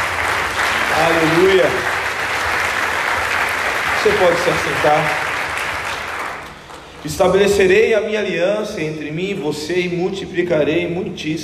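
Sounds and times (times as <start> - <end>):
congregation applauding: 0.0 - 7.5
speech: 1.0 - 1.9, 4.0 - 5.2, 7.0 - 11.4.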